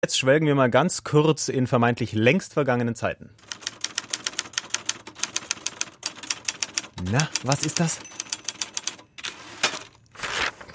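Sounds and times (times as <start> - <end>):
speech: 0.0 - 3.6, 7.1 - 8.1
typewriter keys clacking: 3.4 - 10.0
paper pulled from typewriter roller with a rasping sweep: 9.2 - 10.7.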